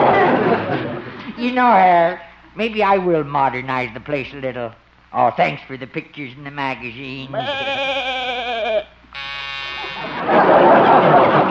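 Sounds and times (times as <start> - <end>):
laughter: 0.0 - 1.4, 9.8 - 11.4
speech: 1.4 - 9.3
electric door buzzer: 9.1 - 10.5.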